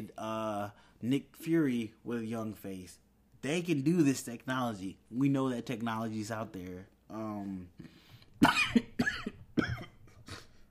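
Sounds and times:
speech: 0:00.2 - 0:09.3
dry harsh cough: 0:08.4 - 0:10.6.

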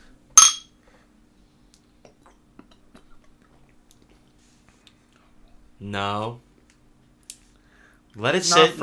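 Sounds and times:
beer bottles clinking together in a toast: 0:00.4 - 0:00.7
speech: 0:05.8 - 0:06.5, 0:08.2 - 0:08.8.

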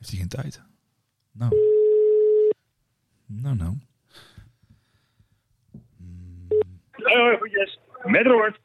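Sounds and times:
speech: 0:00.0 - 0:01.8, 0:03.3 - 0:04.3, 0:07.1 - 0:08.6
telephone ringing tone of an outgoing call: 0:01.5 - 0:02.6
breathy snorts: 0:05.9 - 0:06.8.

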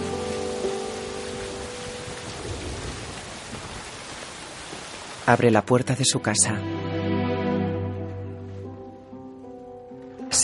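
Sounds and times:
steady rain falling: 0:00.0 - 0:06.4, 0:08.1 - 0:10.4
speech: 0:05.3 - 0:06.8.

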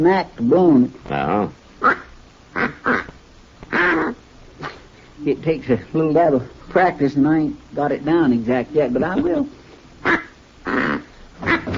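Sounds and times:
speech: 0:00.0 - 0:03.1, 0:05.2 - 0:10.2
duck call blown in quacks and a honk: 0:01.8 - 0:04.8, 0:10.0 - 0:11.7.

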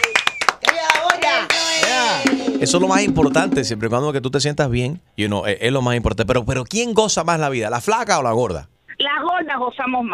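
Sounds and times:
hand clapping: 0:00.0 - 0:02.7
speech: 0:02.6 - 0:10.1.

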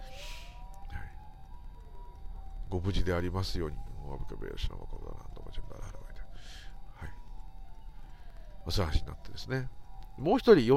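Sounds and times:
ambulance siren: 0:00.0 - 0:10.7
speech: 0:02.7 - 0:07.1, 0:08.7 - 0:10.7.

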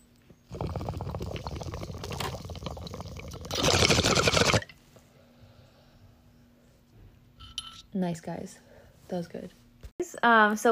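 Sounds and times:
water pipe gurgling as someone takes a hit of cannabis: 0:00.5 - 0:04.8
speech: 0:08.0 - 0:10.7.

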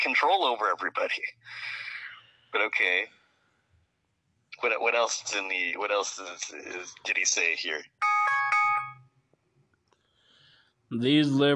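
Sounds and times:
speech: 0:00.0 - 0:01.9, 0:02.5 - 0:03.2, 0:04.6 - 0:08.0, 0:10.9 - 0:11.5
phone ringing with a short electronic chime: 0:08.0 - 0:09.1.

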